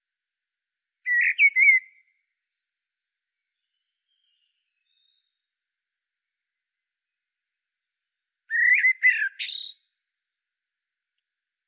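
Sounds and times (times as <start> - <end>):
common blackbird Turdus merula whistled call: 1.1 - 2.0, 8.5 - 9.8.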